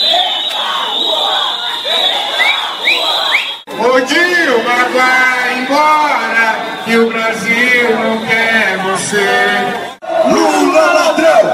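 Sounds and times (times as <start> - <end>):
steady piercing whistle-like tone: 0.0 - 3.7
large outdoor crowd of protesters chanting and shouting: 0.0 - 11.5.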